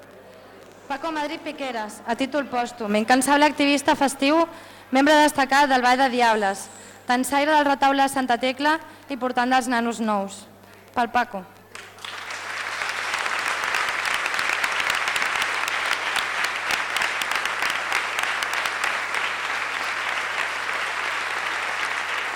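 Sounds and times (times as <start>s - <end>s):
speech: 0.9s - 12.1s
audience applause in a large room: 11.7s - 22.3s.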